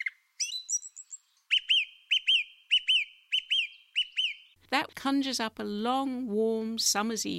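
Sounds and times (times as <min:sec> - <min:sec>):
male songbird singing repeated phrases high in a tree: 0:00.0 - 0:04.6
speech: 0:04.7 - 0:07.3.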